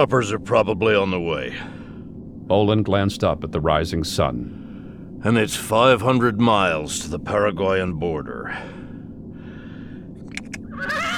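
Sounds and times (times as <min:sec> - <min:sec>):
speech: 0:00.0 - 0:01.8, 0:02.5 - 0:04.6, 0:05.2 - 0:08.8
horse neighing: 0:10.7 - 0:11.1.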